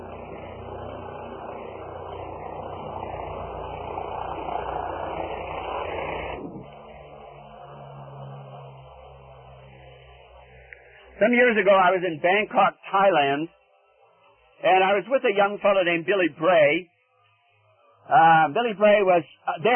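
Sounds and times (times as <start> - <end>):
helicopter flying overhead with rumbling engine roar: 0.0 - 19.7
speech: 11.2 - 13.6, 14.6 - 16.9, 18.1 - 19.7.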